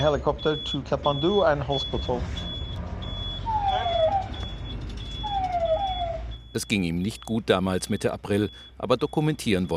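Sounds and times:
speech: 0.0s - 2.5s, 6.6s - 9.7s
ambulance siren wailing during an ambulance ride through Kathmandu: 0.0s - 7.4s
steady city traffic rumble in Kathmandu: 0.0s - 9.7s.

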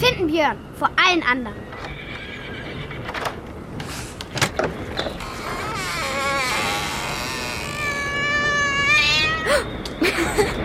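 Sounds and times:
speech: 0.0s - 2.0s
noisy background: 0.0s - 10.6s
sharp clatters and knocks: 4.2s - 5.6s
cat meowing: 5.6s - 9.6s.

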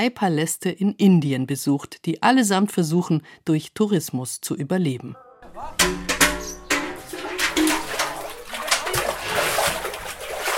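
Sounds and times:
speech: 0.0s - 6.0s
water sloshing in a full bucket hauled from a cistern: 5.8s - 10.5s.

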